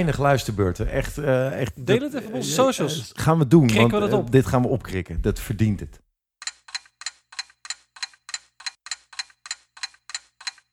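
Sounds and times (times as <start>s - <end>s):
speech: 0.0s - 6.0s
timer ticking: 6.4s - 10.7s.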